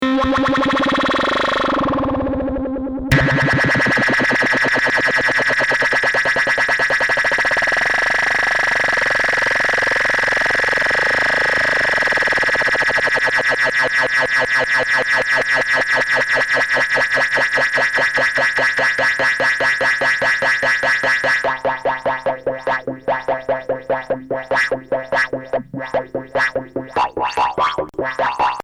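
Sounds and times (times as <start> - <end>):
MS-20 Mini synthesizer LFO test: 0.0 - 28.6.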